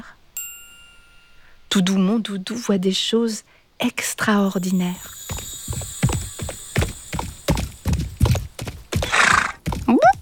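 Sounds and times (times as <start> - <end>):
speech: 1.7 - 5.5
horse hoofbeats clip-clopping in a brisk rhythm: 4.7 - 10.2
horse snorting: 8.6 - 9.9
short rising horse whinny: 9.0 - 9.6.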